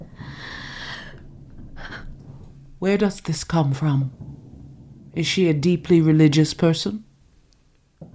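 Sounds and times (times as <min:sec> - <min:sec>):
deep airy inhalation: 0:00.0 - 0:02.2
speech: 0:02.8 - 0:04.3, 0:05.2 - 0:07.1.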